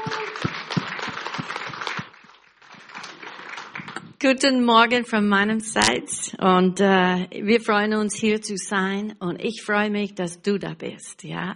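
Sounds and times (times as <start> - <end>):
audience applause: 0.0 - 4.0
speech: 4.2 - 11.5.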